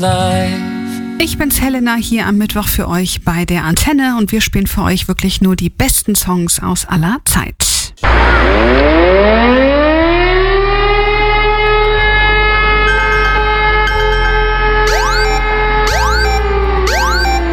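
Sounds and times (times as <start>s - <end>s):
speech: 0.0s - 7.8s
civil defense warning siren wailing for a nationwide warning day test: 8.0s - 17.5s.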